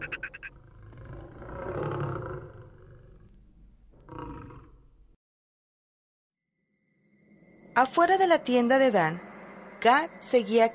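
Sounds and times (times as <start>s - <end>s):
lion roaring at night: 0.0s - 3.4s, 4.0s - 4.8s
speech: 7.8s - 10.7s.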